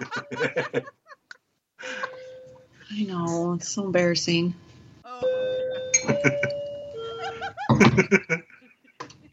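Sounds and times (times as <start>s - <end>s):
people bursting into laughter: 0.0s - 2.2s, 6.0s - 9.3s
speech: 0.3s - 1.0s, 2.9s - 4.6s, 6.1s - 6.6s, 7.8s - 8.4s
battery-powered clock chiming a doorbell-like melody: 2.0s - 2.7s, 5.2s - 7.5s.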